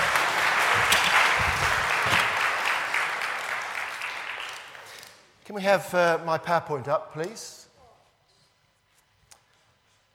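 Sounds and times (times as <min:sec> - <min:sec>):
audience applause: 0:00.0 - 0:05.1
speech: 0:05.6 - 0:07.6.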